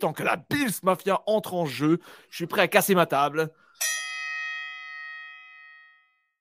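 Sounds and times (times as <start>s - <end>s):
speech: 0.0s - 4.0s
single bell struck: 3.8s - 6.3s.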